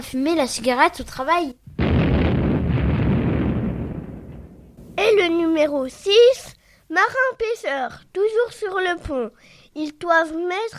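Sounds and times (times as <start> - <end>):
speech: 0.0 - 1.6, 5.6 - 10.7
loud explosion with roaring rumble: 1.7 - 5.4.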